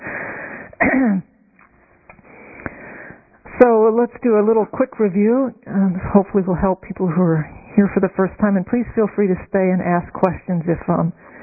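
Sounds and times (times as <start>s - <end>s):
loud rough cough: 0.8s - 1.3s
speech: 1.0s - 1.3s, 3.6s - 11.3s.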